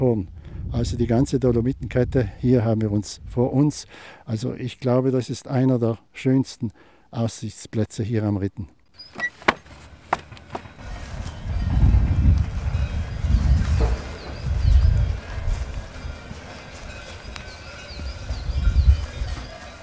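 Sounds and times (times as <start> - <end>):
speech: 0.0 - 8.8
grazing cows rustling and shuffling: 9.0 - 19.8
cowbells clanking among grazing cows outdoors: 10.2 - 19.8.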